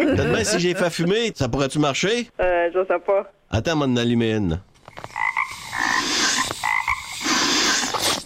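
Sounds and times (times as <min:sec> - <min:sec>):
speech: 0:00.0 - 0:05.2
frogs croaking: 0:04.9 - 0:08.0.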